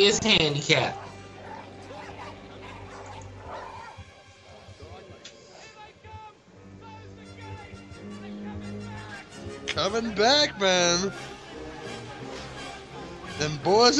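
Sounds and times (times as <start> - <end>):
speech: 0.0 - 1.1, 9.8 - 11.3, 13.4 - 13.9
steady tones: 0.0 - 13.9
dog barking and biting a man's foot: 1.0 - 4.0.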